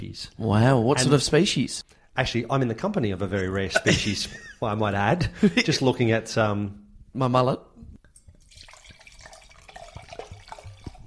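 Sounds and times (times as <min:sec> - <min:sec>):
speech: 0:00.0 - 0:07.7
laughter: 0:03.3 - 0:05.8
wine pouring into a glass: 0:08.1 - 0:11.0.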